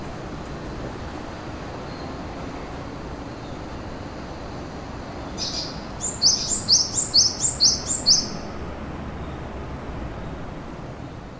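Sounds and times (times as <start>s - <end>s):
steady background hiss: 0.0s - 11.3s
bird calling high thin down-slurred chirps: 5.3s - 8.5s.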